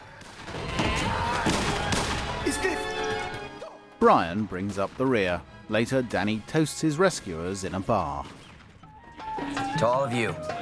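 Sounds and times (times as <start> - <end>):
gunshots in a fight between masked guards and escaping prisoners: 0.0 - 3.0
speech: 4.0 - 8.4, 9.7 - 10.5.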